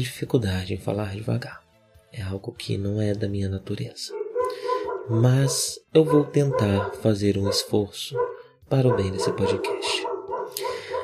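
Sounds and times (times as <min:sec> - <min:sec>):
speech: 0:00.0 - 0:01.6, 0:02.2 - 0:10.6
dog barking and yipping: 0:04.1 - 0:11.0.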